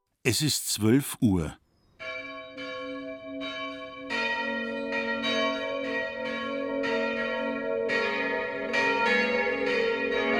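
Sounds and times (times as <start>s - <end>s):
speech: 0.2s - 1.6s
peal of church bells of the parish church in Walda, Upper Bavaria, Germany: 2.4s - 10.2s.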